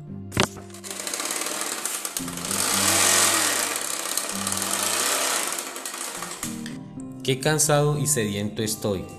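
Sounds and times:
old motorcycle engine sputtering and revving: 0.7 - 6.7
speech: 7.2 - 9.1.

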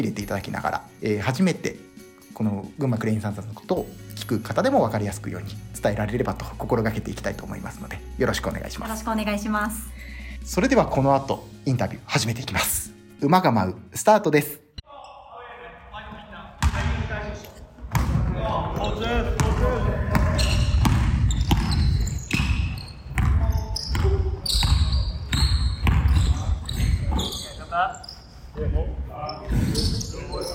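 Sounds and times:
speech: 0.0 - 14.6
sneakers squeaking on a basketball court: 16.6 - 28.6, 29.3 - 30.5
basketball bouncing on a gym floor: 17.9 - 18.4, 19.3 - 27.3.

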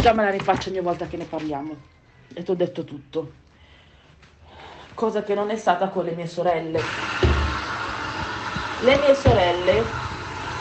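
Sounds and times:
speech: 0.0 - 3.4, 5.0 - 7.3, 8.8 - 10.1
washing machine running with a low rumbling hum: 6.8 - 10.5.

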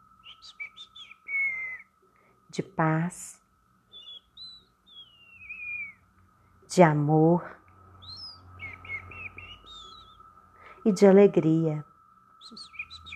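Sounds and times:
birds singing with whistled chirps and trills: 0.2 - 2.0, 3.9 - 6.1, 7.8 - 10.8, 12.4 - 13.1
speech: 2.6 - 3.4, 6.8 - 7.6, 10.8 - 11.9.

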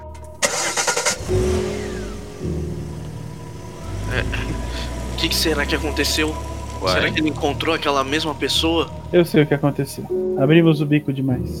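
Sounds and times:
car engine cranking and starting: 0.0 - 10.3
speech: 4.1 - 4.5, 5.2 - 11.5.

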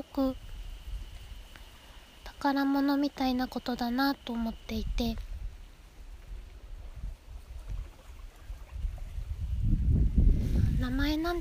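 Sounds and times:
low wind rumbling: 0.0 - 2.3, 4.2 - 11.3
speech: 0.2 - 0.4, 2.4 - 5.3
gentle lake waves lapping: 6.0 - 9.6.

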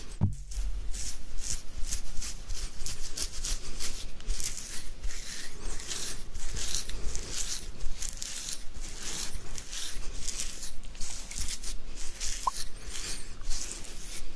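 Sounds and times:
beard scratching: 0.0 - 14.3
soft bump: 0.1 - 0.5.

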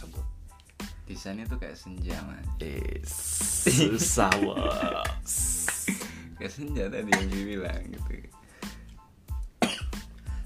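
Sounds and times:
speech: 1.1 - 5.6, 6.4 - 8.4
laughter: 3.7 - 5.2
harsh chesty coughs: 7.1 - 7.4, 9.6 - 10.4.

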